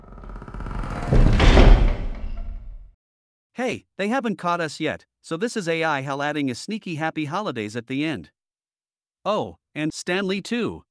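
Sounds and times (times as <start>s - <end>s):
door swinging shut with a heavy booming thud: 0.2s - 2.9s
speech: 3.6s - 8.4s, 9.2s - 10.8s.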